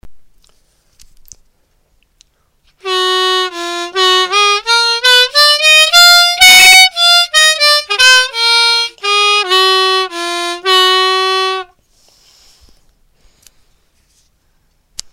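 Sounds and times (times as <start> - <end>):
harmonica playing: 2.8 - 11.8.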